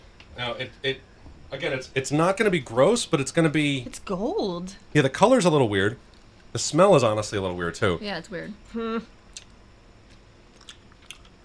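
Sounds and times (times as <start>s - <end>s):
speech: 0.4s - 9.2s
chewing sticky candy: 10.1s - 11.4s.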